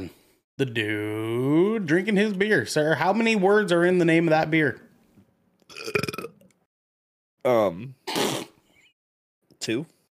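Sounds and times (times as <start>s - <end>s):
speech: 0.0s - 4.8s, 5.7s - 6.1s, 7.4s - 8.2s, 9.6s - 10.0s
burping: 5.7s - 6.6s.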